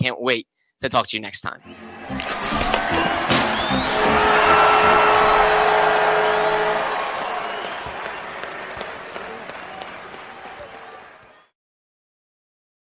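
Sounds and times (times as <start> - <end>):
speech: 0.1 - 3.1
racing car engines roaring: 1.7 - 8.2.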